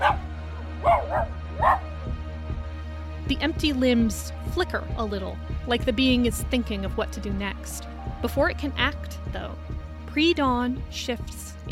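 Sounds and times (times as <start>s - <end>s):
dog barking frantically: 0.0s - 2.0s
speech: 3.3s - 11.7s.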